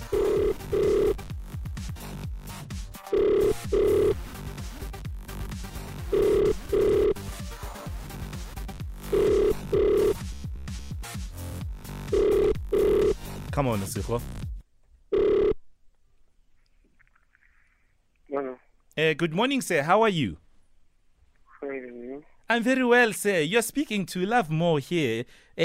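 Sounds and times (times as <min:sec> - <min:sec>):
ringback tone on an outgoing telephone call: 0:00.0 - 0:01.2, 0:03.1 - 0:04.2, 0:06.1 - 0:07.2, 0:09.1 - 0:10.2, 0:12.1 - 0:13.2, 0:15.1 - 0:15.6
speech: 0:13.6 - 0:14.4, 0:19.0 - 0:20.4, 0:22.5 - 0:25.6.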